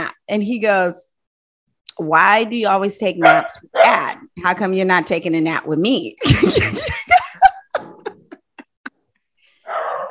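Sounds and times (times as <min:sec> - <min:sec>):
speech: 0:00.3 - 0:01.1, 0:02.0 - 0:07.0
two dogs barking: 0:03.2 - 0:04.2, 0:09.6 - 0:10.0
laughter: 0:06.2 - 0:09.0.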